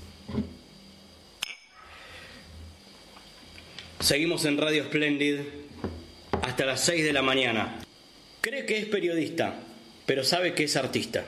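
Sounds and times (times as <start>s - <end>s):
low hum: 0.0s - 11.2s
glasses clinking in a toast: 1.4s - 1.8s
speech: 4.0s - 5.6s, 6.6s - 7.8s, 8.4s - 11.2s.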